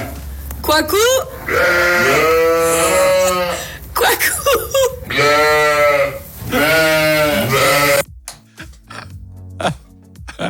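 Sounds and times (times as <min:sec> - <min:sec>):
speech: 0:00.7 - 0:02.4
sheep bleating in a sheepfold: 0:01.4 - 0:03.7, 0:05.0 - 0:08.1
laughter: 0:09.6 - 0:10.4.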